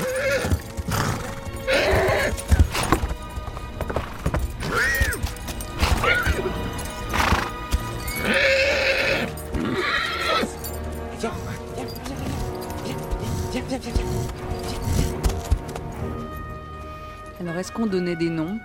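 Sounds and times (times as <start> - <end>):
horse whinnying loudly: 0.0 - 3.0, 4.6 - 10.6
steady clatter of horse hooves: 0.0 - 17.9
men's voices talking: 11.1 - 14.3.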